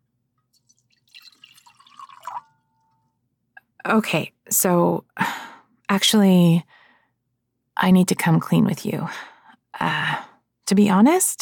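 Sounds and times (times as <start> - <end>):
water poured into a glass for a guest: 0.6 - 3.0
speech: 3.9 - 6.8, 7.8 - 11.4.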